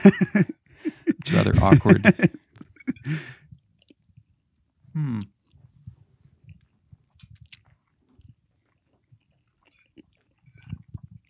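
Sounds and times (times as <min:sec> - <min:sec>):
speech: 0:00.0 - 0:00.5, 0:01.4 - 0:02.4
laughter: 0:00.0 - 0:03.4
mouth clicks and mouth noises between chews: 0:05.0 - 0:05.4
chewing warm pasta with pecorino cheese sauce into a microphone: 0:05.2 - 0:11.2.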